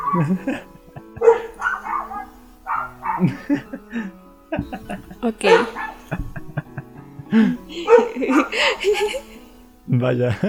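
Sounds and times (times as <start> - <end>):
dogs barking and yelping: 0.0 - 4.0, 4.6 - 6.7, 7.6 - 9.7
laughter: 0.0 - 10.4
speech: 0.1 - 1.3, 3.2 - 6.3, 7.3 - 9.3, 9.9 - 10.4.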